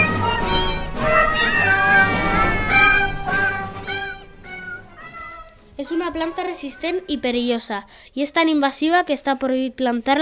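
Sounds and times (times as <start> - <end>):
cat meowing: 0.0 - 7.3
speech: 6.1 - 10.2.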